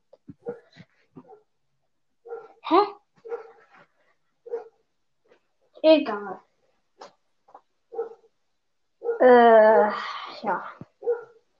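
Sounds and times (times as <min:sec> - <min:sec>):
dog barking: 0:00.4 - 0:01.5, 0:02.2 - 0:03.7, 0:04.4 - 0:04.8, 0:07.9 - 0:08.3, 0:09.0 - 0:10.0, 0:11.0 - 0:11.4
speech: 0:02.7 - 0:03.0, 0:05.9 - 0:06.5.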